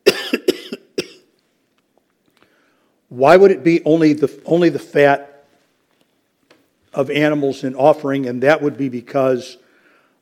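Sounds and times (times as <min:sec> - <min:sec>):
harsh coughs: 0:00.0 - 0:01.3
speech: 0:03.1 - 0:05.3, 0:06.9 - 0:09.6.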